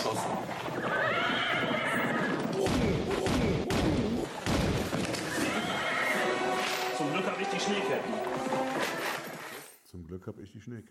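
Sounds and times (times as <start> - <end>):
horse hoof clops of an arriving horse-drawn carriage: 0.0 - 3.7, 4.7 - 9.7
horse neighing: 0.7 - 2.6, 5.2 - 6.6
speech: 10.1 - 10.9.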